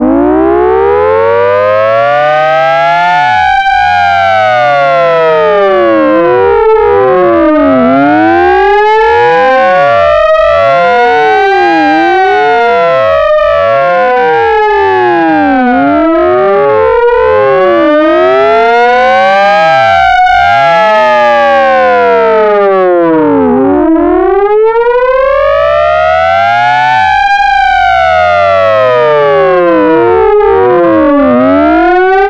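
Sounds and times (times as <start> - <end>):
civil defense alert siren: 0.0 - 32.2.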